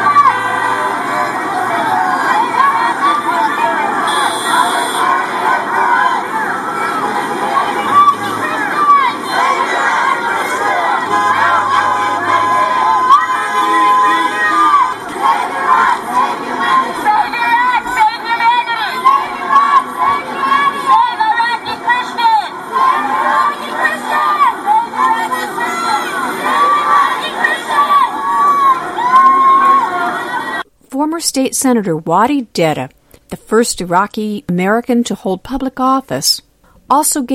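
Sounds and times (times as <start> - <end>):
large crowd at a rally for Iraqi Christians cheering and shouting: 0.0 - 30.7
passing drivers honking car horns in support: 4.0 - 5.1, 11.0 - 14.9
speech: 31.4 - 37.3.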